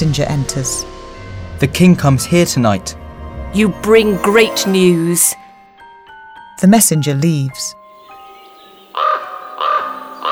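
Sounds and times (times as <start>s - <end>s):
speech: 0.0s - 1.0s, 1.6s - 5.4s, 6.6s - 7.8s
raven croaking: 8.0s - 10.3s.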